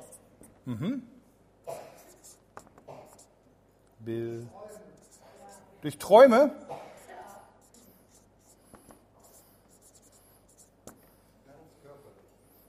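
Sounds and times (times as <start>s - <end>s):
speech: 0.7s - 1.2s, 4.0s - 4.8s, 5.8s - 6.7s
handwriting with a pen: 2.0s - 3.3s, 4.4s - 5.7s, 7.0s - 10.8s.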